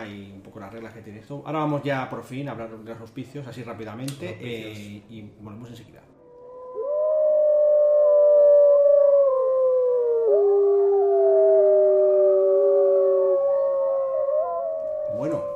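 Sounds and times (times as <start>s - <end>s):
speech: 0.1s - 6.2s
several wolves howling in chorus: 6.5s - 15.5s.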